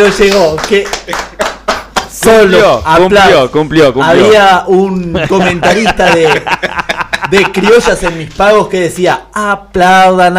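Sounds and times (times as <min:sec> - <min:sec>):
speech: 0:00.0 - 0:01.3, 0:02.2 - 0:10.3
live audience clapping: 0:00.0 - 0:02.5
laughter: 0:00.7 - 0:02.0, 0:04.9 - 0:08.6.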